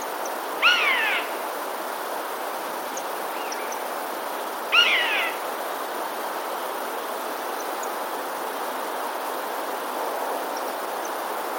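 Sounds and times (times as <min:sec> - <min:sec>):
faint background hiss: 0:00.0 - 0:11.5
Eurasian jay uttering a clear slightly falling mew: 0:00.6 - 0:01.4, 0:04.7 - 0:05.4.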